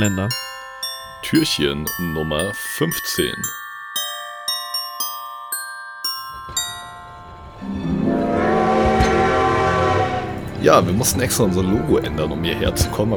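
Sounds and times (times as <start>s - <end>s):
speech: 0.0s - 0.4s, 1.2s - 3.6s, 10.6s - 13.1s
bright ringing chime strikes: 0.0s - 8.1s
rumbling rail noise of a running train: 6.7s - 13.1s
loud sustained train horn: 7.8s - 11.0s.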